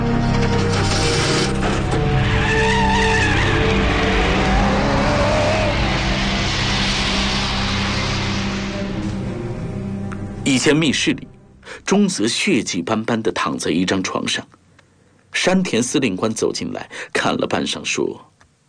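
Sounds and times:
motorcycle engine roaring while driving off: 0.0s - 10.0s
squealing skidding motorcycle tires: 0.2s - 9.8s
speech: 10.6s - 14.6s, 15.4s - 18.3s.

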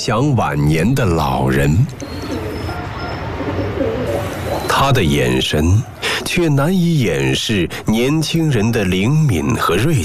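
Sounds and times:
speech: 0.0s - 2.3s, 4.6s - 10.0s
noise of a crowd in the sun: 0.0s - 10.0s
pigeons cooing while being fed breadcrumbs: 1.8s - 5.2s.

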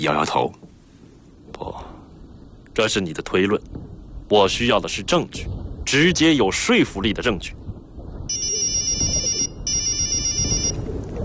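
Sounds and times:
speech: 0.0s - 0.7s, 2.8s - 7.6s
low rumble: 0.0s - 11.2s
police officer's mobile phone ringtone in electronic bursts: 8.3s - 10.8s.

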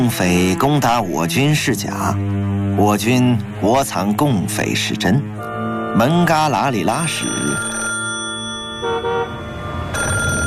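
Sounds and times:
speech: 0.0s - 7.8s
telephone ringing with shifting electronic tone: 6.7s - 10.4s.

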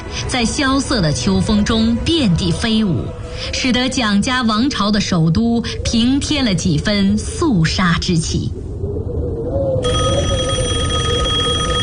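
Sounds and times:
low rumbling hum: 0.0s - 11.8s
speech: 0.3s - 8.7s
telephone ringing with electric bell tone at a military affairs bureau office: 9.8s - 11.8s.

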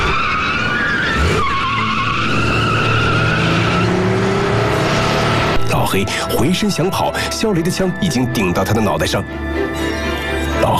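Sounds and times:
car tires squealing in an underground garage: 0.0s - 5.7s
car engine roaring speeding out of an underground garage: 0.0s - 6.3s
speech: 6.0s - 9.9s.

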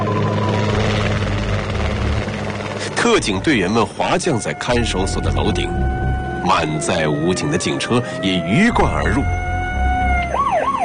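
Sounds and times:
police helicopter hovering above a detention center: 0.0s - 10.8s
speech: 3.1s - 9.5s.

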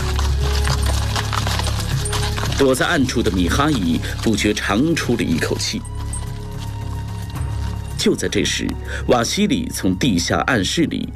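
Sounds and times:
horse-drawn carriage woody rattle: 0.0s - 8.7s
horse hooves clip-clopping from a horse-drawn carriage: 0.0s - 10.4s
speech: 2.6s - 5.9s, 8.0s - 11.1s.

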